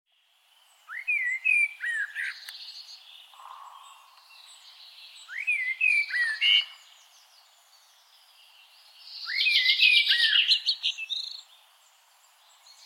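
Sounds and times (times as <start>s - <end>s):
Eurasian blackbird Turdus merula singing: 0.1s - 12.8s.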